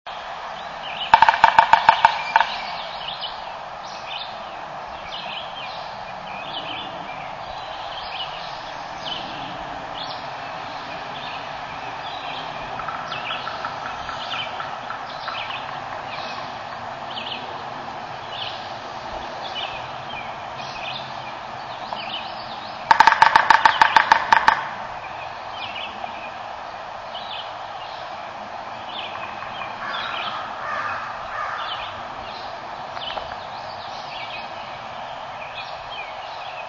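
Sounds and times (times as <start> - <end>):
woodpecker drumming: 0.9 - 4.0, 8.0 - 17.6, 19.5 - 26.4, 28.9 - 34.9.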